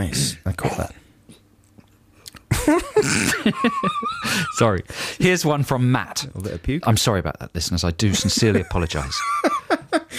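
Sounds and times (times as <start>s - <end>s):
speech: 0.0s - 1.0s, 3.1s - 10.1s
laughter: 2.5s - 4.7s, 8.0s - 10.1s
person clearing throat: 2.9s - 3.4s.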